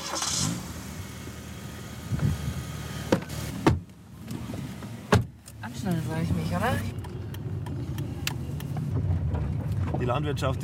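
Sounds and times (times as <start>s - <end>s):
farmer's car engine rumble driving over fields: 0.0s - 10.6s
car doors thumping shut: 3.1s - 3.9s, 5.0s - 5.4s
speech: 5.8s - 6.9s, 10.0s - 10.6s.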